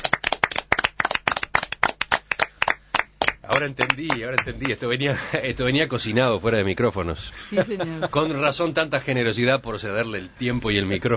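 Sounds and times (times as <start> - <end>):
group applauding someone for an award: 0.0 - 4.8
speech: 3.5 - 11.1.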